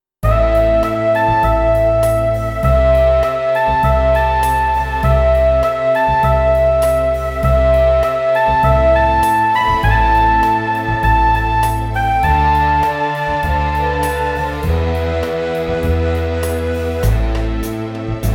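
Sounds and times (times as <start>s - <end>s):
flugelhorn melody: 0.2s - 18.3s.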